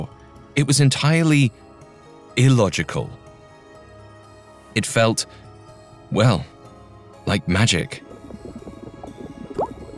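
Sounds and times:
speech: 0.6 - 1.7, 2.4 - 3.2, 4.7 - 5.4, 6.1 - 6.5, 7.3 - 8.6
water bubbling and gurgling at a low simmer: 8.0 - 9.9
marble dropped into bubbling water: 9.5 - 9.9.

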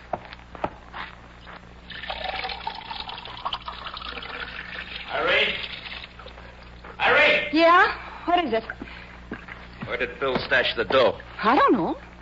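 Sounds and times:
water poured into a drinking glass: 1.9 - 6.8
speech: 7.6 - 8.8, 10.0 - 12.0.

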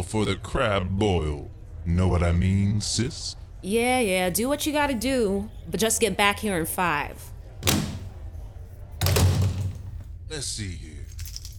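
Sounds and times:
speech: 0.0 - 7.7, 10.3 - 11.0
drawer sliding open with a rough rumbling scrape: 7.6 - 8.2, 9.0 - 10.1.

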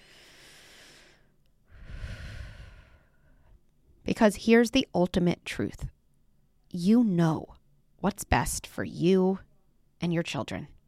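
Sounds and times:
person drawing a deep breath in and out: 0.0 - 3.6
speech: 4.2 - 6.0, 6.7 - 10.7.

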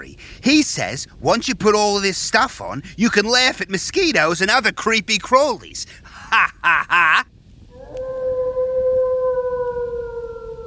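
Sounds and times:
speech: 0.4 - 7.3
laughter: 6.2 - 7.2
wolf howling: 7.7 - 10.6.

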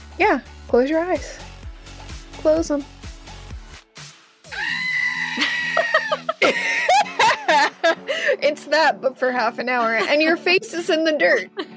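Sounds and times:
speech: 0.2 - 1.5, 2.4 - 3.0, 8.4 - 11.7
eerie high-pitched screaming cries and bleat-like shrieks: 4.5 - 6.2
laughter: 5.2 - 8.3, 9.7 - 10.5.

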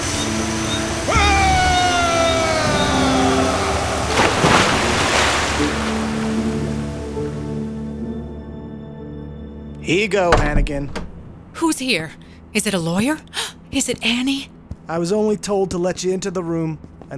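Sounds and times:
rushing waterfall: 0.0 - 7.4
speech: 9.9 - 11.0, 11.6 - 17.1.

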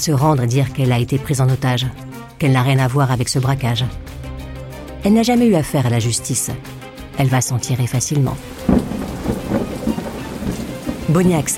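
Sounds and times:
speech: 0.0 - 4.3, 5.0 - 9.4, 11.1 - 11.5
steady rain pouring down in a storm: 8.4 - 11.5.

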